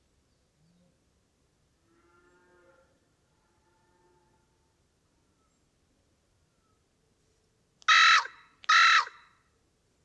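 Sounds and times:
carrion crow Corvus corone rasping caws: 7.9s - 9.3s.

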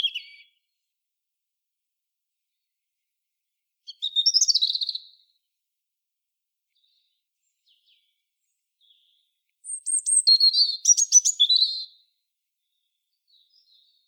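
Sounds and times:
European robin singing high thin warbling phrases: 0.0s - 0.6s, 3.9s - 5.2s, 8.8s - 12.0s, 12.6s - 14.0s.

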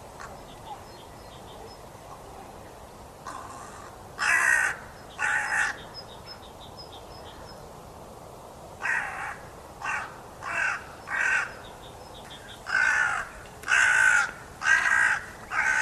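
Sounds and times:
carrion crow Corvus corone giving harsh raspy caws: 3.2s - 5.8s, 8.8s - 11.6s, 12.6s - 15.7s.

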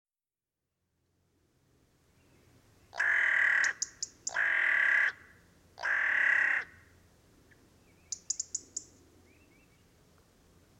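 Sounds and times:
carrion crow cawing: 3.0s - 6.9s.

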